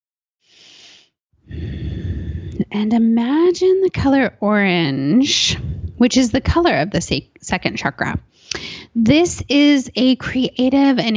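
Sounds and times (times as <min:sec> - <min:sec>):
deep breath during a guided chakra relaxation exercise: 0:00.5 - 0:02.6, 0:08.3 - 0:09.0
speech: 0:02.7 - 0:11.1.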